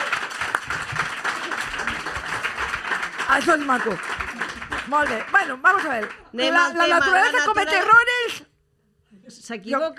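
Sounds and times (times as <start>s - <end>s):
audience applause: 0.0s - 7.8s
speech: 3.3s - 4.2s, 4.9s - 8.0s, 9.5s - 9.9s.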